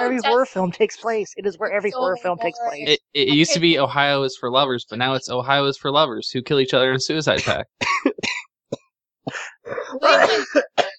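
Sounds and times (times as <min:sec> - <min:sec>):
speech: 0:00.0 - 0:08.4, 0:09.3 - 0:10.9
coughing fit blending into laugh-like bursts: 0:07.3 - 0:10.9.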